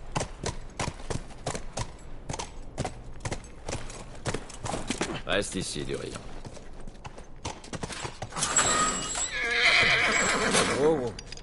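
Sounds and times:
horse hooves clopping: 0.0s - 11.4s
speech: 5.3s - 6.3s, 10.8s - 11.2s
horse neighing: 8.4s - 11.1s.

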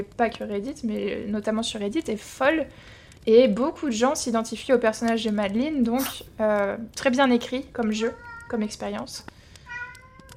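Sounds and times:
speech: 0.0s - 9.3s
faint clicks or taps: 0.1s - 3.3s, 6.4s - 10.3s
cat meowing: 8.0s - 8.7s, 9.7s - 10.3s.

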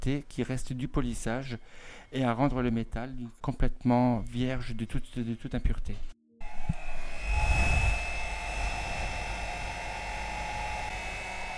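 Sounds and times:
speech: 0.0s - 6.8s
hair dryer blowing while drying a piece of jewellery: 6.4s - 11.5s.

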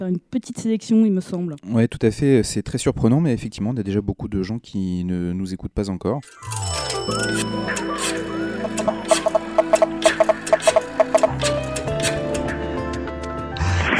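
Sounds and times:
speech: 0.0s - 9.0s
telephone ringing: 6.3s - 11.9s
busy sustained musical backdrop: 6.4s - 13.6s.

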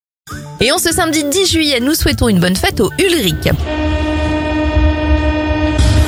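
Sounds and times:
speech: 0.6s - 4.0s
Paris metro train loud sustained tonal whine: 1.5s - 6.0s
deep rumble of Paris metro train: 3.3s - 6.0s.

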